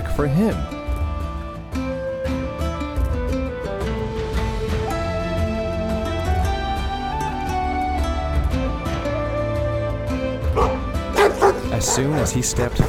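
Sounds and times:
sustained musical backdrop: 0:00.0 - 0:12.8
speech: 0:00.2 - 0:00.8, 0:11.9 - 0:12.8
wolfhounds barking and yipping on board a ship: 0:10.5 - 0:12.8.

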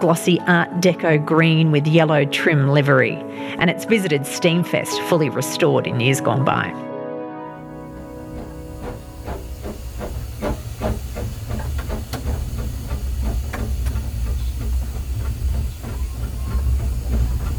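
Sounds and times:
speech: 0:00.0 - 0:06.9
steam locomotive hissing: 0:07.6 - 0:17.5
steam locomotive rhythmic clatter of beats: 0:07.6 - 0:17.5.

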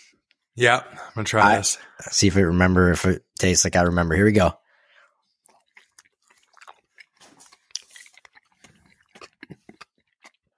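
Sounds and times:
speech: 0:00.6 - 0:04.6
chewing crunchy sprinkle-topped snack with white chocolatey frosting: 0:05.2 - 0:10.5.

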